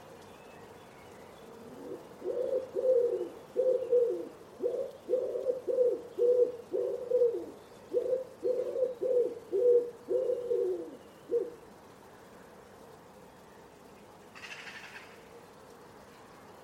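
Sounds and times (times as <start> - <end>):
Common Wood Pigeon cooing: 1.4 - 11.7.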